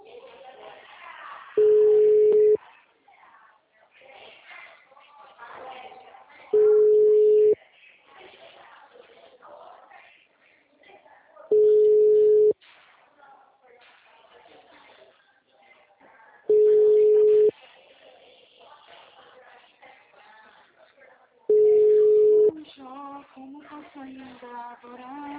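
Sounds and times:
faint voices talking: 0:00.0 - 0:25.3
telephone ringing tone of an outgoing call: 0:01.6 - 0:02.6, 0:06.6 - 0:07.6, 0:11.5 - 0:12.6, 0:16.5 - 0:17.5, 0:21.5 - 0:22.6.

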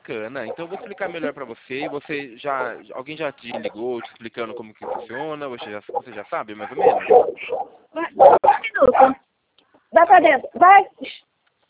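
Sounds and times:
speech: 0:00.0 - 0:09.2, 0:09.9 - 0:11.3
several dogs barking and yipping: 0:00.4 - 0:09.2.

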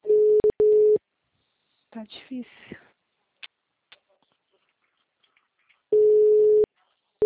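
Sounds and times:
telephone busy tone after a call is hung up: 0:00.1 - 0:01.0, 0:06.0 - 0:07.2
speech: 0:02.0 - 0:02.8.

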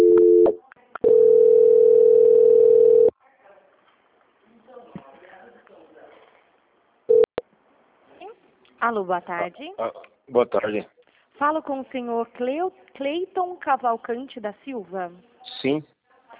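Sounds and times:
telephone line tone while a bank call is transferred: 0:00.0 - 0:03.1
speech: 0:08.9 - 0:16.0.

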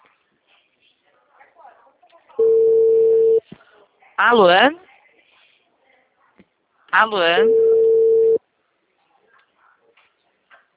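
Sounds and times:
telephone ringback tone on an outgoing call: 0:02.4 - 0:03.4, 0:07.4 - 0:08.4
speech: 0:04.2 - 0:04.8, 0:07.0 - 0:07.6.

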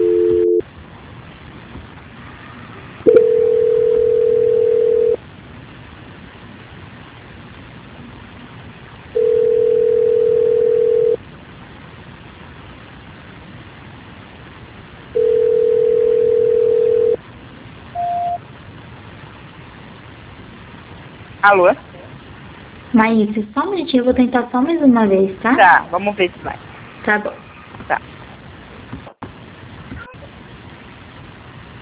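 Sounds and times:
low telephone line beeps during a call transfer: 0:00.0 - 0:00.6, 0:03.1 - 0:05.2, 0:09.2 - 0:11.2, 0:15.2 - 0:17.2, 0:18.0 - 0:18.4
speech: 0:21.5 - 0:21.8, 0:23.0 - 0:28.1.

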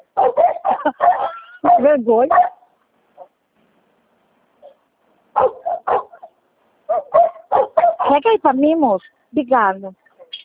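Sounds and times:
dog barking: 0:00.1 - 0:03.3, 0:04.6 - 0:08.2
speech: 0:00.8 - 0:02.4, 0:08.1 - 0:10.0.

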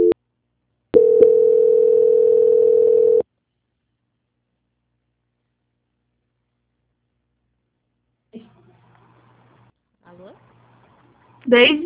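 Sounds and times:
telephone beep during a call transfer: 0:01.0 - 0:03.2
short faint noise: 0:03.2 - 0:11.8
speech: 0:11.5 - 0:11.8.

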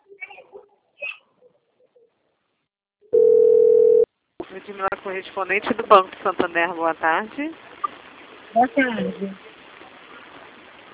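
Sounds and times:
telephone dial tone while placing a call: 0:03.2 - 0:04.1
speech: 0:04.7 - 0:07.7, 0:08.5 - 0:09.5.

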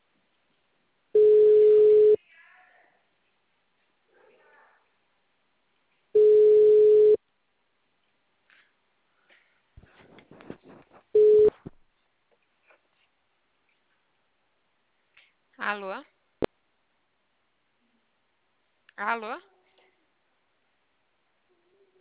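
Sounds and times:
telephone ringback tone while a call is being placed: 0:01.2 - 0:02.2, 0:06.2 - 0:07.2, 0:11.2 - 0:11.5
speech: 0:15.6 - 0:16.1, 0:19.0 - 0:19.5.

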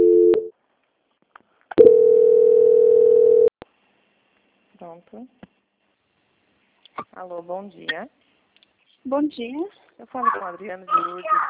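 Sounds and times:
telephone line tones during a call transfer: 0:00.0 - 0:00.5, 0:01.8 - 0:03.5
speech: 0:05.0 - 0:05.6, 0:07.0 - 0:08.2, 0:09.0 - 0:11.4.

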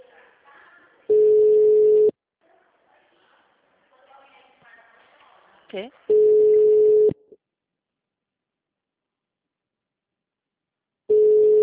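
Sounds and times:
telephone call tone while dialing a client: 0:01.1 - 0:02.1, 0:06.1 - 0:07.2, 0:11.1 - 0:11.6
speech: 0:05.7 - 0:06.1.

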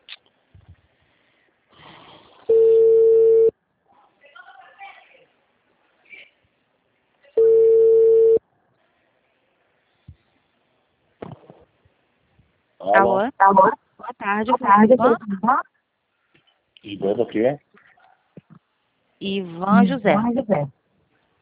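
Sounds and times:
low-pitched telephone ringing tone on a call: 0:02.5 - 0:03.5, 0:07.4 - 0:08.4
speech: 0:14.4 - 0:15.7, 0:16.8 - 0:17.7, 0:19.2 - 0:20.8.

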